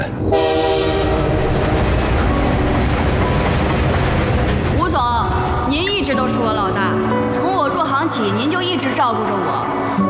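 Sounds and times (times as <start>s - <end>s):
train rumbling and clattering on rails: 0.0s - 10.0s
train horn blare: 0.2s - 3.3s
speech: 8.2s - 10.0s.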